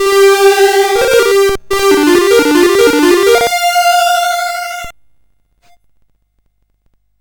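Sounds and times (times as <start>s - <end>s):
MOS 8580 SID chip game music: 0.0s - 4.9s.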